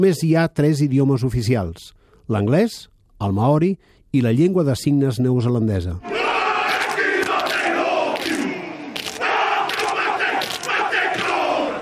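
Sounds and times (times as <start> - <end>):
speech: 0.0 - 6.5
rugby team chanting and shouting a haka: 6.0 - 11.8.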